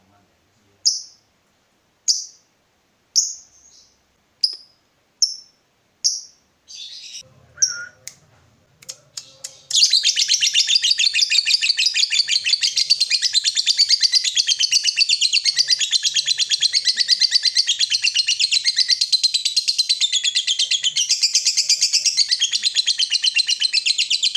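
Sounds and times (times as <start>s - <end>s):
Yellow-vented bulbul calling in fast chatter: 9.6s - 24.3s.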